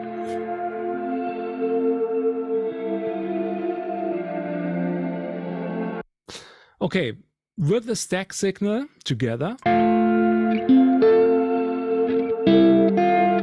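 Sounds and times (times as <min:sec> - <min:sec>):
sustained guitar tone drenched in delay and reverb: 0:00.0 - 0:06.0, 0:09.6 - 0:13.4
speech: 0:06.8 - 0:10.0.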